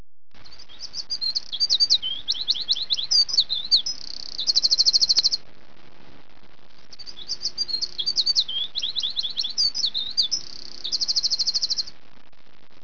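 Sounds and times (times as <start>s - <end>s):
bird chirping with twittering notes and buzzy trill: 0.4s - 5.4s, 6.8s - 12.0s.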